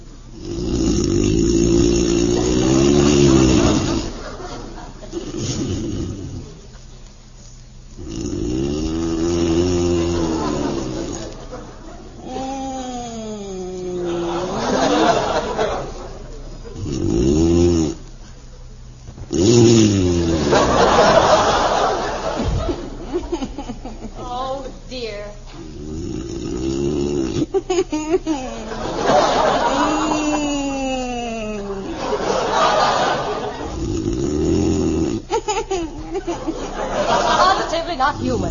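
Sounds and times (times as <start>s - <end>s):
man snoring loudly in bed: 0.3s - 4.2s, 5.1s - 6.6s, 8.0s - 11.4s, 16.8s - 18.1s, 19.3s - 22.5s, 25.6s - 27.6s, 28.6s - 35.6s, 38.2s - 38.5s
laughter: 2.3s - 5.4s, 9.8s - 12.5s, 13.5s - 16.8s, 20.3s - 24.8s, 27.4s - 33.8s, 35.3s - 38.5s.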